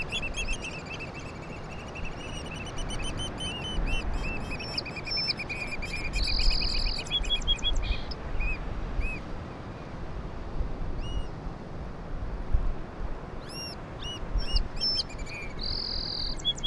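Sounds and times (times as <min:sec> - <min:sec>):
Black Oystercatchers Haematopus bachmani calling: 0:00.0 - 0:09.2, 0:13.4 - 0:16.6
Song Sparrow Melospiza melodia singing: 0:00.0 - 0:09.2, 0:13.4 - 0:16.6
wind: 0:00.0 - 0:16.6.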